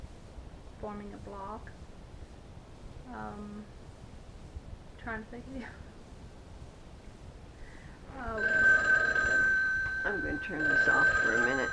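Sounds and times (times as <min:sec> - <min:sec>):
speech: 0:00.8 - 0:01.9, 0:03.1 - 0:03.8, 0:05.0 - 0:05.9, 0:08.1 - 0:08.7, 0:10.0 - 0:11.7
telephone ringing with electronic bell tone: 0:08.3 - 0:11.7.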